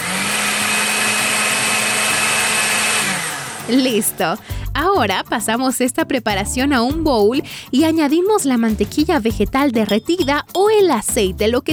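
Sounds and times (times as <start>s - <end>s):
blender grinding a dense mixture at high speed: 0.0s - 4.5s
speech: 3.7s - 11.7s.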